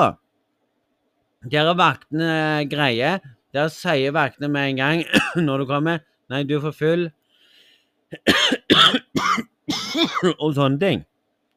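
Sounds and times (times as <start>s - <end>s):
speech: 0.0s - 0.2s, 1.4s - 7.2s, 8.1s - 11.1s
person coughing after swallowing water the wrong way: 5.0s - 5.5s, 8.2s - 10.4s.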